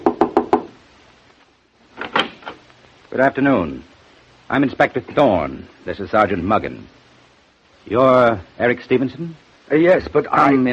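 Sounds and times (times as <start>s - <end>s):
knocking on a hotel room door: 0.0s - 0.8s
speech: 3.1s - 3.9s, 4.5s - 7.0s, 7.8s - 10.7s.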